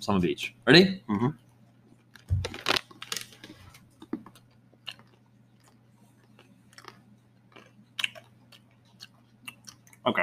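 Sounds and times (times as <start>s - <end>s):
speech: 0.0s - 1.4s, 10.1s - 10.2s
faint steady hum: 0.0s - 10.2s
crunchy chewing of dry snack mix: 2.0s - 10.0s.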